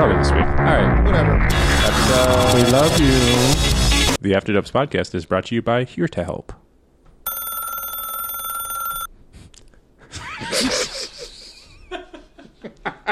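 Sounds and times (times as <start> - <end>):
speech: 0.1 - 6.6
telephone bell ringing: 7.3 - 9.1
laughter and giggling: 10.0 - 13.0.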